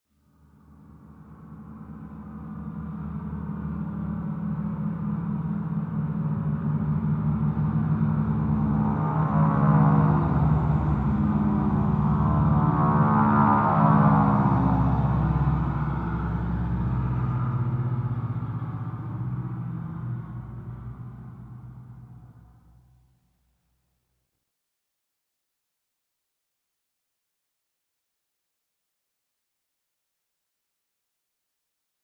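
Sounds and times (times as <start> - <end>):
aircraft passing by an airfield hangar: 0.8 - 22.5.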